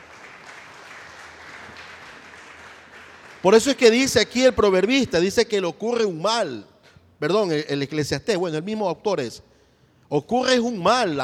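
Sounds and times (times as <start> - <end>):
audience applauding in a large room: 0.0 - 3.9
speech: 3.4 - 9.5, 10.1 - 11.2.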